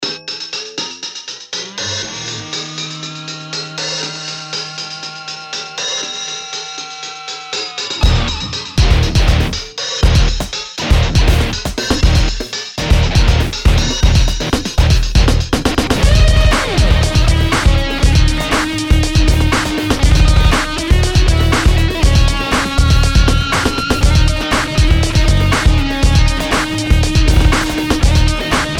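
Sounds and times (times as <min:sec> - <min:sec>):
rock music from vinyl: 0:01.5 - 0:28.7.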